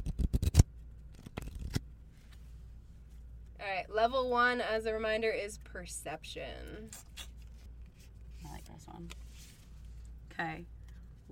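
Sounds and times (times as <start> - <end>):
deck of playing cards being shuffled: 0.0 - 2.4, 6.9 - 10.2
speech: 3.9 - 7.2, 8.8 - 9.2, 10.4 - 11.3.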